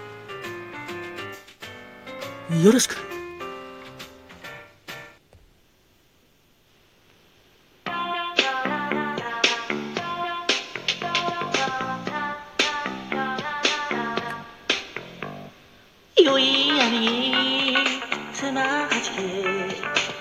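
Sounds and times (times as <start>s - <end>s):
recorded pop song cover: 2.5s - 3.0s, 8.0s - 14.5s, 16.2s - 20.1s
speech: 2.5s - 3.2s.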